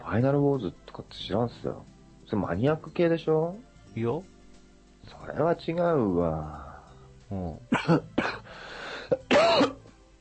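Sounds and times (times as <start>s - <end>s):
speech: 0.1s - 4.3s, 5.0s - 6.7s, 7.3s - 8.3s
coughing fit: 7.7s - 8.5s, 9.1s - 9.9s.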